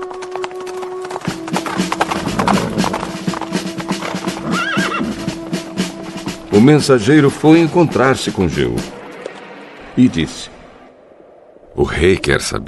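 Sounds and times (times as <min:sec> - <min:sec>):
horses' hooves clip-clopping as riders approach: 0:00.0 - 0:09.5
dense outdoor noise: 0:00.0 - 0:12.6
horse whinnying: 0:04.0 - 0:05.3
speech: 0:06.6 - 0:09.0, 0:10.0 - 0:10.6, 0:11.8 - 0:12.6.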